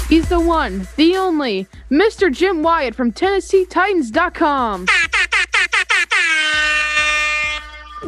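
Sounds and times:
speech: 0:00.1 - 0:05.1
air horn blasts: 0:04.9 - 0:08.0.

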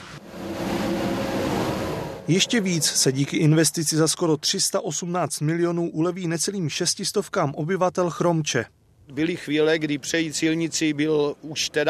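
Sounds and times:
heavy trucks driving past on a road in the Czech Republic: 0:00.0 - 0:03.7
speech: 0:02.3 - 0:11.8.

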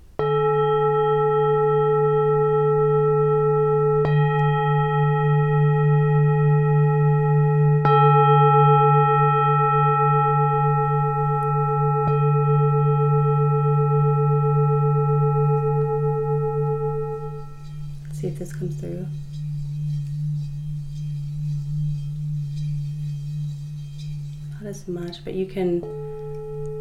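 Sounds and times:
singing bowl struck with a traditional striker: 0:00.2 - 0:26.8
speech: 0:24.8 - 0:26.0.

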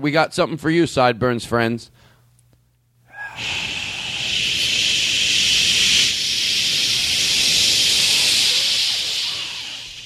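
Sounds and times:
speech: 0:00.0 - 0:02.1
several people hissing together into a microphone: 0:03.1 - 0:10.0.

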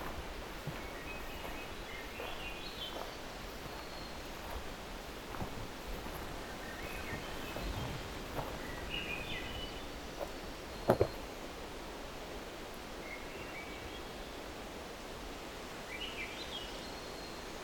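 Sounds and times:
soft rustling: 0:00.0 - 0:11.2
forest thrushes singing a duet in deep forest: 0:00.0 - 0:11.7
steady hiss of woodland ambience: 0:00.0 - 0:17.6.

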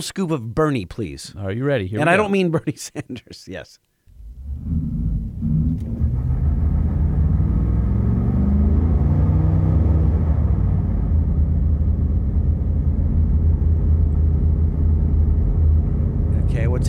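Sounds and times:
speech: 0:00.0 - 0:03.9, 0:04.6 - 0:05.0
pickup truck 7.3 engine rumbling during a burnout: 0:04.2 - 0:16.8.

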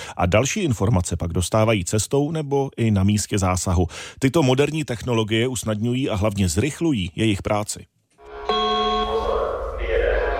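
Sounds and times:
speech: 0:00.2 - 0:08.0
loud bell-like electronic tone of a fire station alarm: 0:08.2 - 0:09.6
fire station alarm signal at a central fire station: 0:08.2 - 0:10.1.

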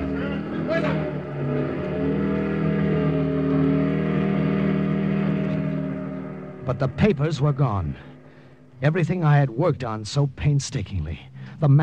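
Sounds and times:
motorcycle engine revving and pulling away: 0:00.0 - 0:09.1
speech: 0:06.7 - 0:08.1, 0:08.8 - 0:11.8.

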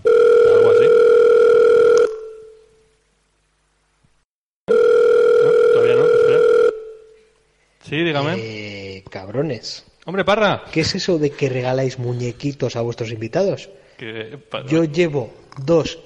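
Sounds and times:
telephone incoming call electronic tones: 0:00.0 - 0:02.8, 0:04.7 - 0:07.2
speech: 0:08.2 - 0:16.0.

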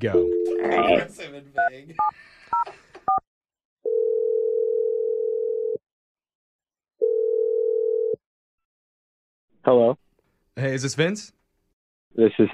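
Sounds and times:
speech: 0:00.0 - 0:03.3, 0:09.6 - 0:10.0, 0:10.6 - 0:11.4, 0:12.1 - 0:12.5
long steady phone ringing tones: 0:03.8 - 0:05.8, 0:07.0 - 0:08.2.

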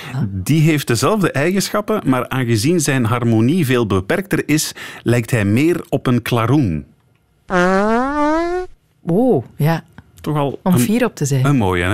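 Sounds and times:
speech: 0:00.2 - 0:06.9, 0:07.5 - 0:08.0, 0:09.0 - 0:11.9
bugle-like fart: 0:07.5 - 0:08.8.

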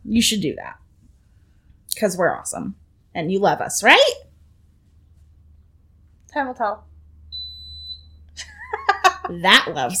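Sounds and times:
speech: 0:00.1 - 0:00.8, 0:01.9 - 0:04.3, 0:06.3 - 0:06.9, 0:09.3 - 0:09.9
high-pitched electronic beep from a box: 0:07.3 - 0:08.2.

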